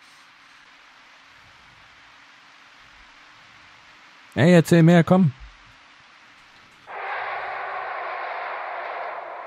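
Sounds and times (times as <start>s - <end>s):
speech: 4.4s - 5.4s
train passing through a train station: 6.9s - 9.4s.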